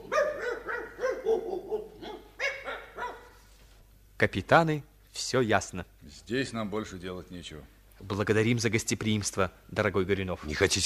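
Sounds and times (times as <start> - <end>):
dogs barking and yelping at feeding time: 0.0 - 3.4
speech: 4.2 - 10.8.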